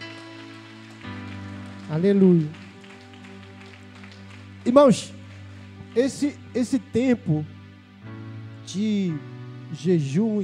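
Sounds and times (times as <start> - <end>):
audience applause: 0.0 - 6.5
sustained keyboard chords: 0.0 - 10.4
speech: 1.9 - 2.6, 4.6 - 5.2, 6.0 - 7.5, 8.7 - 10.4.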